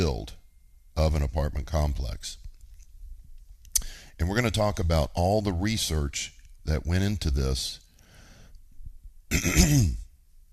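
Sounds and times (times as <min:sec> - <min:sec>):
speech: 0:00.0 - 0:00.4, 0:01.0 - 0:02.4, 0:04.2 - 0:07.8, 0:09.3 - 0:10.0
person coughing: 0:09.3 - 0:10.1.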